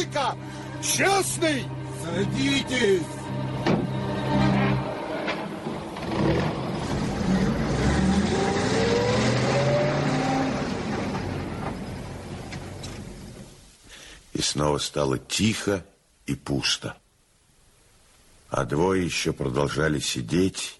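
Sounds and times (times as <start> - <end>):
speech: 0.0 - 4.5, 14.5 - 17.0, 18.5 - 20.7
car engine starting, revving and accelerating away: 3.8 - 13.6.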